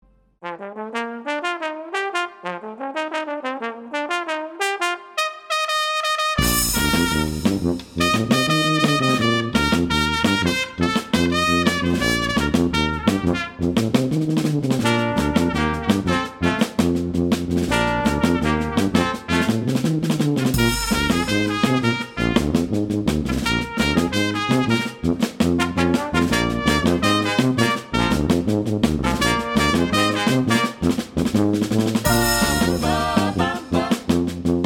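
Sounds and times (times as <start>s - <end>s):
brass band playing: 0.4s - 34.6s.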